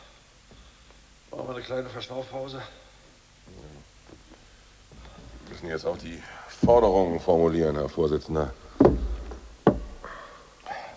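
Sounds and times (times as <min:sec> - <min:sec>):
speech: 0:01.3 - 0:02.8, 0:05.5 - 0:09.0
single sharp knock against a door: 0:06.6 - 0:07.9, 0:08.5 - 0:10.1.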